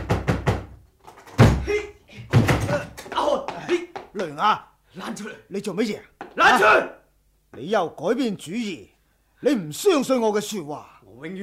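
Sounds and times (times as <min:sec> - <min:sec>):
door being pounded hard: 0:00.0 - 0:03.4
person shouting loudly: 0:01.5 - 0:02.0, 0:02.6 - 0:03.9, 0:06.3 - 0:07.0
speech: 0:04.2 - 0:11.4.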